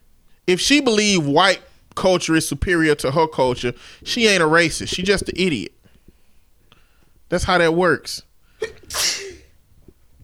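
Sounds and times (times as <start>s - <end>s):
quiet breathing: 0.0s - 0.5s, 3.6s - 4.2s, 4.8s - 7.3s, 8.3s - 10.2s
speech: 0.5s - 5.8s, 7.3s - 9.1s
person sneezing: 8.6s - 9.6s.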